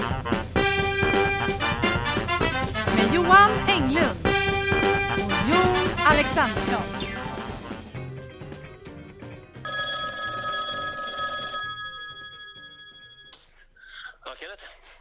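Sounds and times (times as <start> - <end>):
music: 0.0 - 9.8
speech: 3.2 - 4.2, 6.1 - 7.0
telephone ring tone on an outgoing call: 9.6 - 13.4.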